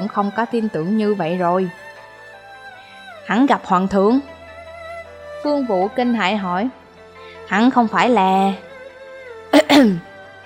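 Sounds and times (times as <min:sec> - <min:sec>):
speech: 0:00.1 - 0:01.8, 0:03.3 - 0:04.3, 0:05.4 - 0:06.8, 0:07.5 - 0:08.7, 0:09.8 - 0:10.1
dry cough from outside: 0:09.6 - 0:10.0.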